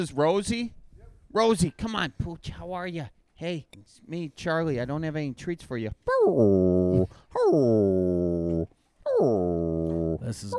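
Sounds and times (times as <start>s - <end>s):
speech: 0.0s - 10.5s
Catahoula leopard dog whimpering in a bar: 6.1s - 10.5s.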